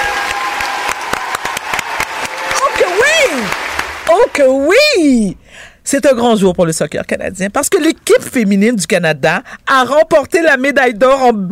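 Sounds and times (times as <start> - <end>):
crowd applauding: 0.0 - 4.6
speech: 3.4 - 11.5.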